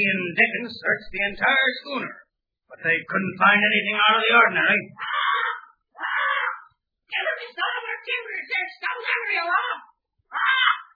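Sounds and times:
speech: 0.0s - 5.3s, 7.1s - 10.6s
parrot squawking: 5.0s - 6.7s, 9.0s - 10.9s.

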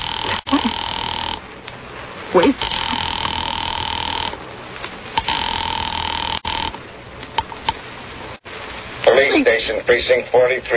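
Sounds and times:
telephone ringing on the line while a caller waits to reach the police department: 0.0s - 1.4s, 2.6s - 4.4s, 5.2s - 6.8s
speech: 2.3s - 2.8s, 9.4s - 10.7s
telephone line clicks and line noise: 2.4s - 7.9s.

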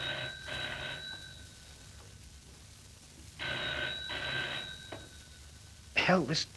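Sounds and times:
telephone ringing in classic double-ring pattern: 0.0s - 1.6s, 3.4s - 5.2s
speech: 6.1s - 6.5s.

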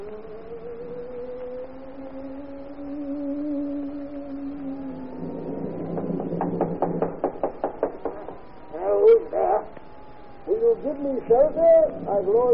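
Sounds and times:
low droning background: 0.0s - 12.5s
knocking on a wooden door: 6.0s - 8.3s
speech: 11.0s - 12.5s.

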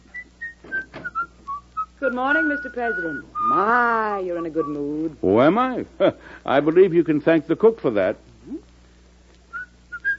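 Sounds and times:
person whistling a tune: 0.0s - 4.9s, 9.5s - 10.1s
faint low hum: 0.0s - 10.1s
speech: 2.0s - 8.3s.

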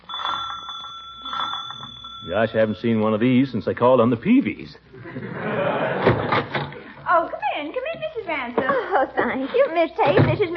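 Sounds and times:
bright metallic rattling door bell ringing: 0.0s - 2.8s
speech: 2.3s - 5.6s, 7.6s - 10.5s
laughter: 5.0s - 6.9s, 8.6s - 9.4s.

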